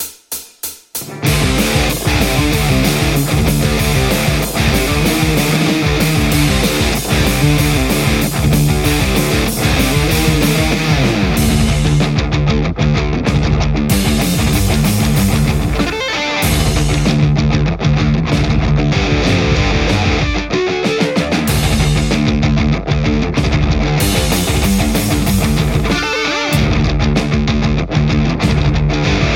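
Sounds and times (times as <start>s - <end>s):
Telecaster electric guitar playing metal: 1.0s - 29.3s.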